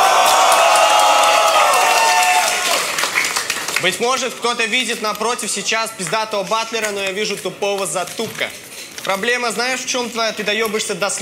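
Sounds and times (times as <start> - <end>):
large crowd cheering and shouting: 0.0 - 4.0
scattered claps in crowd: 0.0 - 8.2
speech: 3.8 - 11.2.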